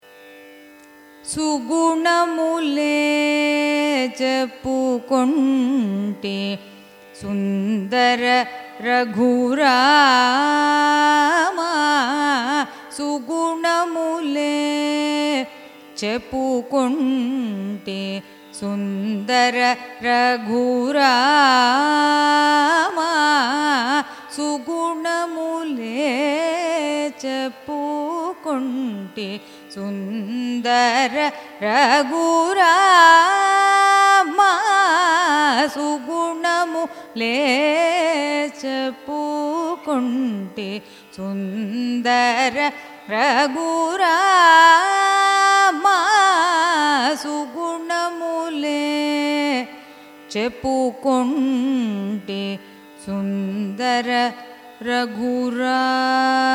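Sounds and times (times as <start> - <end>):
carnatic raga music: 0.0 - 56.5.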